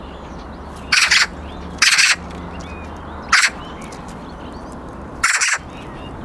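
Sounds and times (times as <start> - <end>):
faint thin whistles of small birds: 0.0 - 6.2
Eurasian magpie Pica pica giving harsh raspy calls: 0.8 - 4.0, 5.2 - 6.2.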